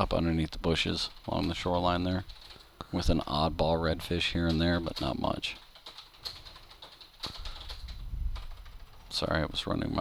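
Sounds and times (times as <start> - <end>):
speech: 0.0 - 5.6, 9.2 - 9.9
typing on a computer keyboard: 1.0 - 3.3, 3.9 - 9.4.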